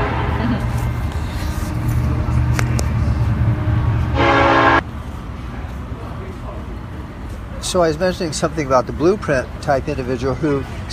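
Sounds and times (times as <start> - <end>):
loud sustained train horn blast: 0.0 - 1.2, 1.8 - 4.8
train rumbling past with heavy low roar: 0.0 - 7.2
speech: 7.7 - 10.9.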